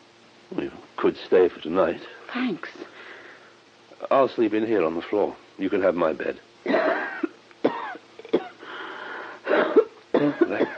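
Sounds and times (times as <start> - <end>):
speech: 0.5 - 3.0, 4.0 - 6.8
harsh raspy coughing: 6.7 - 8.8, 9.4 - 10.7.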